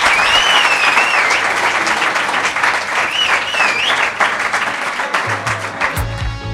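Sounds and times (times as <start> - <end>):
whistles over the clapping: 0.0 - 4.5
loud applause from a group: 0.0 - 6.4.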